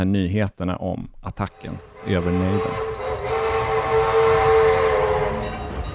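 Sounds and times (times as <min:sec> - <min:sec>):
speech: 0:00.0 - 0:02.9
train horn blaring: 0:01.5 - 0:05.9
heavy rumble of rolling rail cars: 0:01.6 - 0:05.9.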